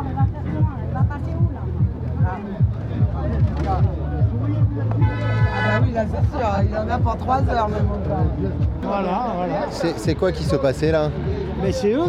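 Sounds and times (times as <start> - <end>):
noisy crowd murmur with voices chattering: 0.0 - 12.0
truck horns honking at a road blockade: 4.9 - 6.1
speech: 6.0 - 12.0.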